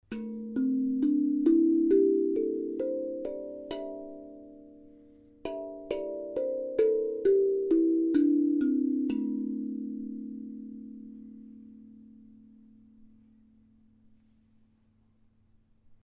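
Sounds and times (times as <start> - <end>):
Zenko tongue drum in C pentatonic: 0.0 - 12.4.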